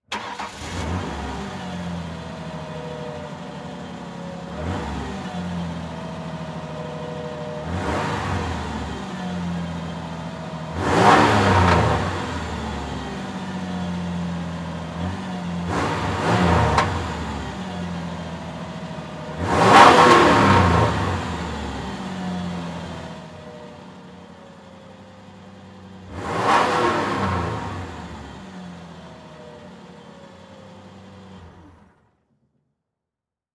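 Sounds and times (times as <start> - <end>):
Ford Ranger truck engine starting idling revving and switching off: 0.0 - 23.8, 25.9 - 29.9.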